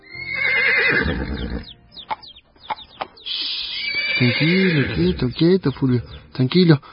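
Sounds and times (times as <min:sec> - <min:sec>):
horse neighing after a saddle is put on its back: 0:00.0 - 0:01.7, 0:03.3 - 0:05.4
horse snorting: 0:00.5 - 0:01.7, 0:03.7 - 0:06.3
speech: 0:04.2 - 0:06.9.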